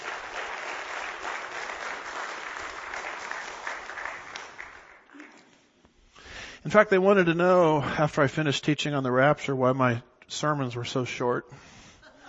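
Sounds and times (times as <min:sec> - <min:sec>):
audience applauding: 0:00.0 - 0:05.5
speech: 0:06.6 - 0:11.7.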